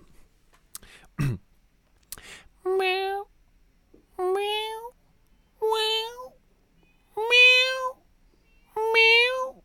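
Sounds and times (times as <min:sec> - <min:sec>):
mouth clicks: 0:00.7 - 0:01.1, 0:02.0 - 0:02.3
person imitating a cat's meow: 0:02.7 - 0:03.3, 0:04.2 - 0:04.9, 0:05.6 - 0:06.4, 0:07.2 - 0:08.0, 0:08.8 - 0:09.6.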